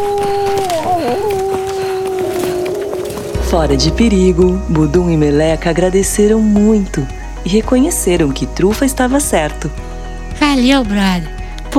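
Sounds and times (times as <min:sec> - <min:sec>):
wolf howling and yelping as it flees in fear: 0:00.0 - 0:03.5
speech: 0:03.5 - 0:11.7.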